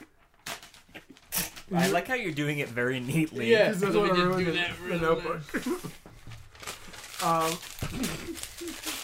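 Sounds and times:
paper contract ripping and crinkling: 0.4 - 3.3, 5.4 - 9.0
speech: 1.7 - 6.1, 7.2 - 8.2.

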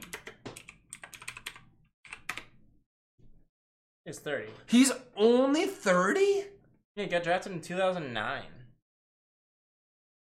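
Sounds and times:
typing on a computer keyboard: 0.0 - 2.5
speech: 4.1 - 8.6.

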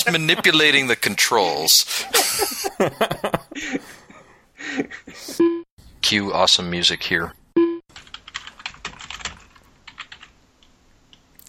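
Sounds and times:
speech: 0.0 - 4.0, 6.1 - 7.4
laughter: 0.0 - 5.4
typing on a clicky mechanical computer keyboard: 7.9 - 10.3.

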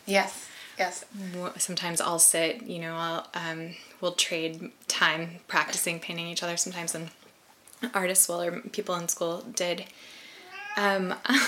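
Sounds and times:
speech: 0.1 - 7.2, 7.8 - 10.2, 10.8 - 11.4
cat meowing: 10.4 - 10.9.

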